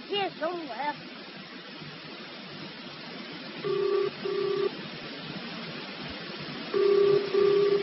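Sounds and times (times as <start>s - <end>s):
steady hiss: 0.0s - 7.8s
speech: 3.6s - 4.4s
telephone line ringing in the receiver during a call: 3.6s - 4.7s, 6.8s - 7.8s.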